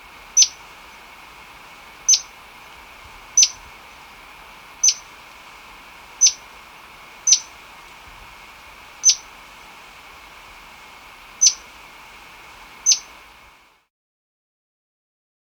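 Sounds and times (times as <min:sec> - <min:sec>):
steady background hiss: 0:00.0 - 0:13.9
White-browed spinetail giving sharp high call notes in Ecuador: 0:02.1 - 0:02.4, 0:03.3 - 0:03.6, 0:04.7 - 0:05.2, 0:06.0 - 0:07.8, 0:08.6 - 0:10.4, 0:11.0 - 0:11.9, 0:12.6 - 0:13.3.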